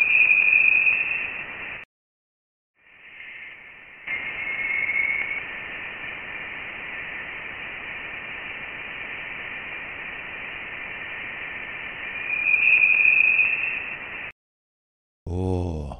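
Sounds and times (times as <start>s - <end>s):
thin whistling tones in a Voyager recording of interstellar plasma: 0.0s - 1.4s, 3.0s - 5.5s, 12.1s - 14.0s
steady hiss in a Voyager recording of interstellar plasma: 2.8s - 14.3s.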